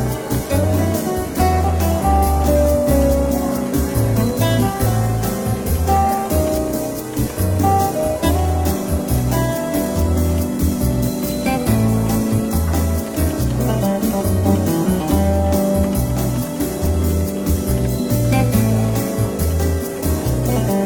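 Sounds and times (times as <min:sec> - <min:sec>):
gentle jazz piano: 0:00.0 - 0:20.8
jazz walking bass line: 0:00.0 - 0:20.8.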